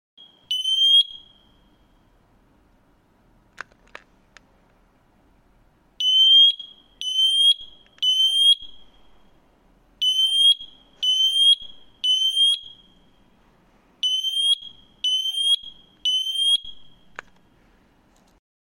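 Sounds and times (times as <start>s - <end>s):
smoke alarm beeping: 0.2s - 2.2s, 6.0s - 9.4s, 10.0s - 13.3s, 14.0s - 17.3s.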